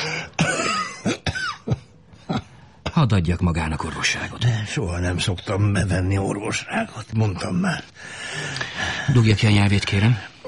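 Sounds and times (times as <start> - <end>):
person coughing in a cold Tibetan house: 0.1 - 2.5
speech: 3.0 - 10.3.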